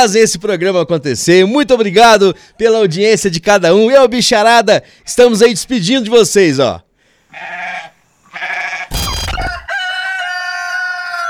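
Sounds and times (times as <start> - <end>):
speech: 0.0 - 7.8
rooster crowing loudly: 8.8 - 11.2.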